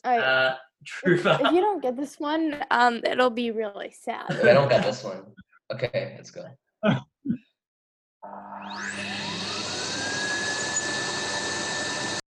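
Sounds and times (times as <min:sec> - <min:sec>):
speech: 0:00.0 - 0:07.4
laughter: 0:00.2 - 0:01.7, 0:04.3 - 0:05.2
person clearing throat: 0:04.3 - 0:05.0, 0:06.8 - 0:07.5
vacuum cleaner running: 0:08.2 - 0:12.2.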